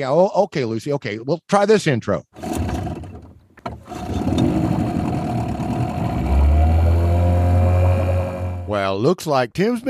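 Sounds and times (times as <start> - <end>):
speech: 0.0 - 2.5, 8.7 - 9.8
wind: 2.4 - 8.8
water humming: 3.8 - 8.7
motorboat engine droning: 3.8 - 8.8
deep heavy rumble: 4.2 - 8.8.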